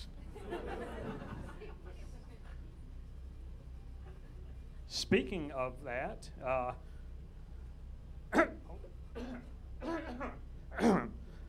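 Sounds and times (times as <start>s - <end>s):
laughter: 0.0s - 2.9s, 3.9s - 4.9s
hum: 0.0s - 11.4s
speech: 5.0s - 6.9s
man coughing: 8.3s - 11.2s.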